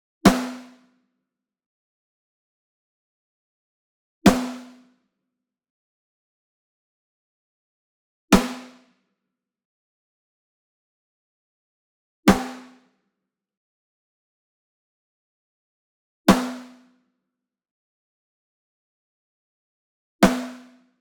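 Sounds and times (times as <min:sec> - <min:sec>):
Ludwig Black Beauty snare drum rim hit: 0:04.3 - 0:04.6, 0:12.3 - 0:12.7, 0:16.3 - 0:16.6, 0:20.2 - 0:20.6.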